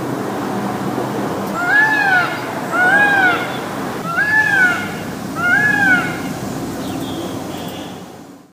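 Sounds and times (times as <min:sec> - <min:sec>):
low rumbling noise: 0:00.0 - 0:07.5
Indian peafowl loud nasal wailing calls: 0:01.5 - 0:07.9.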